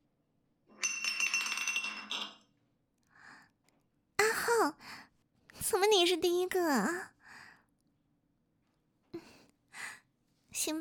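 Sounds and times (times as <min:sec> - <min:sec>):
glass liquor bottle spinning on a table during a drinking game: 0:00.8 - 0:02.5
speech: 0:05.8 - 0:07.2.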